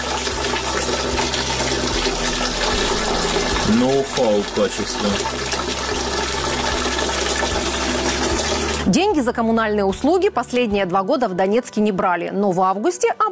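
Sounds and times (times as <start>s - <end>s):
brown water gushing from a tap: 0.0s - 9.1s
speech: 3.7s - 5.7s, 8.9s - 13.3s.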